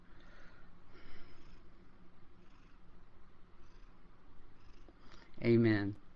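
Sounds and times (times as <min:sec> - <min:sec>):
cat purring: 0:01.0 - 0:05.2
speech: 0:05.4 - 0:06.0.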